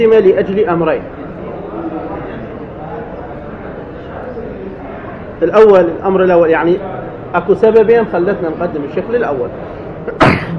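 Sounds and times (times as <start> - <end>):
speech: 0.0 - 1.2, 5.4 - 10.5
person sneezing in the room: 10.1 - 10.5.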